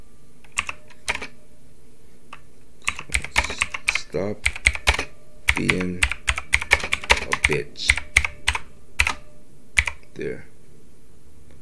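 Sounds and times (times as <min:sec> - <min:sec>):
typing on a computer keyboard: 0:00.5 - 0:01.3, 0:02.8 - 0:10.0
speech: 0:04.1 - 0:04.6, 0:05.6 - 0:06.2, 0:07.5 - 0:08.0, 0:10.2 - 0:10.5.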